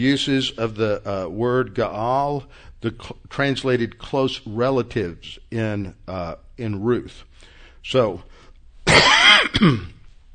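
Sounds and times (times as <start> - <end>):
speech: 0.0 - 10.0
harsh cough: 8.9 - 10.1
throat clearing from a scratchy throat: 8.9 - 10.1.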